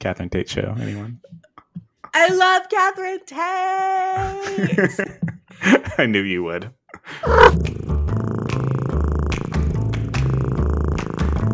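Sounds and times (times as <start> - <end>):
speech: 0.0 - 1.5, 2.1 - 7.8
laughter: 4.2 - 6.0
cat purring: 7.2 - 11.5.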